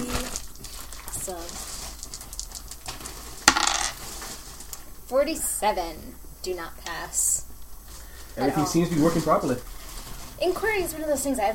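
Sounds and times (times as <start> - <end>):
speech: 1.3 - 1.8, 5.1 - 7.4, 8.4 - 9.8, 10.4 - 11.5
two dice clattering onto a hard table: 3.4 - 4.0.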